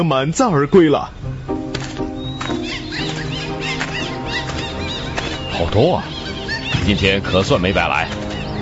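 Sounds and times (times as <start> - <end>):
speech: 0.0 - 1.2, 5.6 - 6.2, 6.8 - 8.3
troop of monkeys calling: 2.1 - 8.6.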